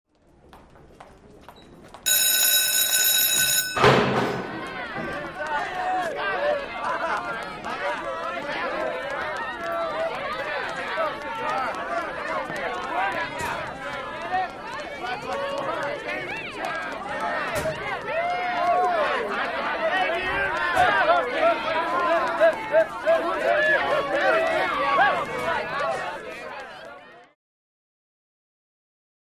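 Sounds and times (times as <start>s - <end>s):
school bell ringing in a hallway: 2.1s - 5.2s
laughter: 4.4s - 26.8s.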